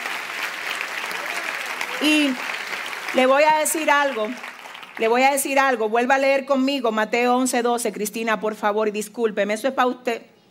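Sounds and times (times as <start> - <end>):
audience applause: 0.0 - 5.5
speech: 2.0 - 2.5, 3.1 - 10.3.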